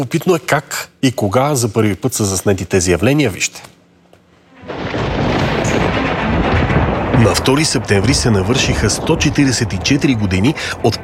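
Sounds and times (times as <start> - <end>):
speech: 0.0 - 3.8, 7.2 - 11.0
thunder from a lightning strike: 4.5 - 11.0.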